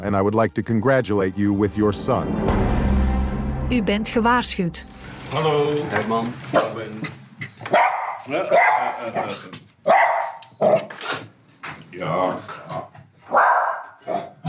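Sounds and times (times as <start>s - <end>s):
speech: 0.0s - 2.8s, 3.7s - 11.3s, 11.9s - 13.5s
dog barking sharply at someone at the door: 7.7s - 10.9s, 13.2s - 14.4s.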